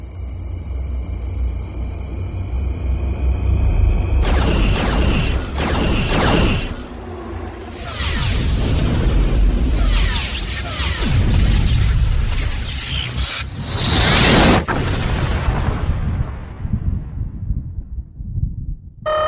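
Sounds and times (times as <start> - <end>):
low rumbling bed: 0.0 - 19.1
quantum torpedoes firing in a space battle: 4.2 - 16.4
roaring blasts and whooshing bursts in a space battle: 4.2 - 17.6.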